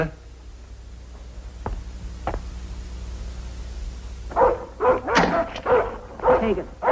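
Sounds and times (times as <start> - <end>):
dog barking: 4.3 - 6.9.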